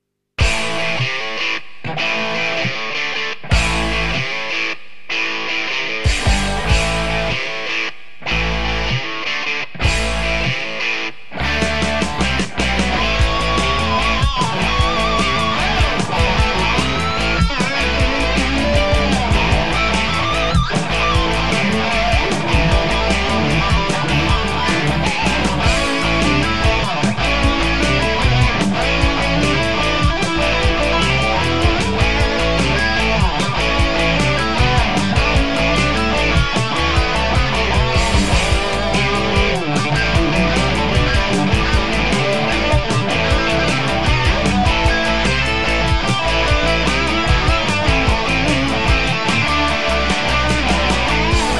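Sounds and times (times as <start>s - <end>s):
two rock rhythm guitars: 0.4s - 51.5s.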